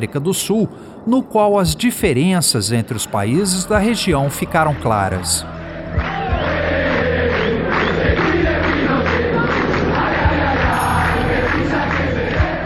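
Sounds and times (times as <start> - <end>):
speech: 0.0 - 6.1
large street crowd of protesters chanting in unison: 4.6 - 12.6.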